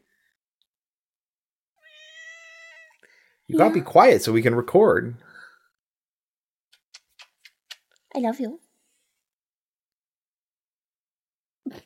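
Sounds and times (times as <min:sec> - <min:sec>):
cat meowing: 0:01.8 - 0:03.0
speech: 0:03.5 - 0:05.3, 0:08.2 - 0:08.6.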